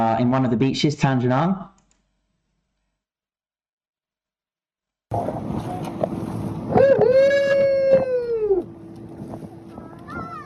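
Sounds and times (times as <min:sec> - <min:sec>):
speech: 0:00.0 - 0:01.7
fishing boat motor droning: 0:05.1 - 0:10.4
wind noise: 0:05.1 - 0:10.4.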